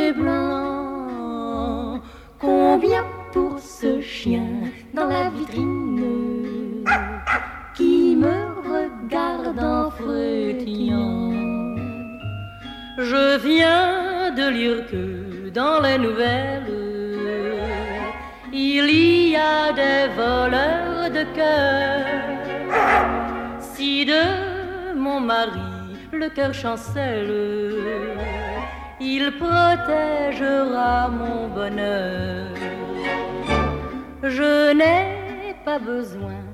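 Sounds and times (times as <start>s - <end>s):
woman singing in French: 0.0s - 12.2s, 13.0s - 36.5s
light instrumental backing with a steady bass: 0.0s - 36.5s
speech: 2.8s - 6.2s, 14.5s - 16.8s, 18.6s - 23.1s, 23.8s - 24.4s, 25.1s - 28.4s, 29.0s - 32.6s, 34.2s - 35.1s, 35.7s - 36.4s
short dog barks: 6.9s - 7.8s, 22.7s - 23.6s.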